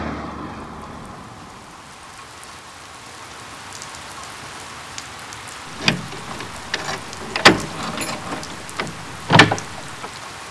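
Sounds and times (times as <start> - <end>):
heavy rain: 0.0 - 5.8, 9.3 - 10.5
sharp clunks and bumps as people go from a car to inside: 5.7 - 10.1.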